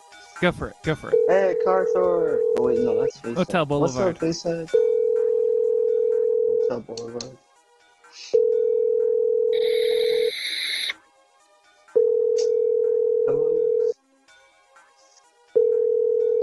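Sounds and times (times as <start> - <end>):
speech: 0.4 - 4.9, 6.7 - 7.4
telephone ringback tone: 1.1 - 3.1, 4.8 - 6.7, 8.4 - 11.0, 12.0 - 13.9, 15.6 - 16.4.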